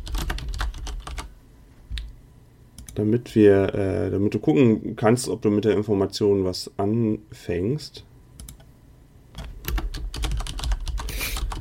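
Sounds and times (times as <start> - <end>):
fingers typing on a mechanical keyboard: 0.0 - 1.3, 9.4 - 11.5
speech: 3.0 - 8.1.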